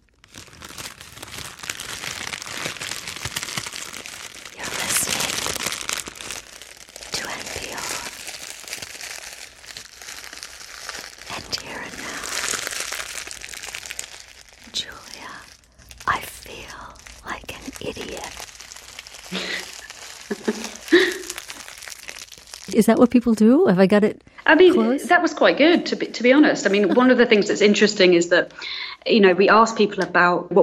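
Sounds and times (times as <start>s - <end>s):
brown paper bag crunched and crinkled: 0.0s - 23.2s
laughter: 19.3s - 21.4s, 24.5s - 27.9s
speech: 22.8s - 30.6s.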